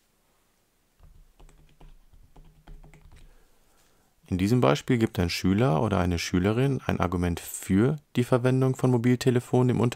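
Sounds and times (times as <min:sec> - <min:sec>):
rapid keystrokes on a computer keyboard: 0:01.0 - 0:03.3
speech: 0:04.3 - 0:09.9.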